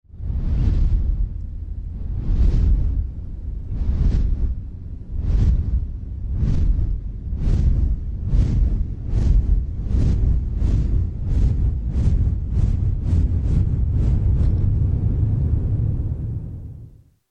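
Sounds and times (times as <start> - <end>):
dragon flying: 0.2 - 17.0.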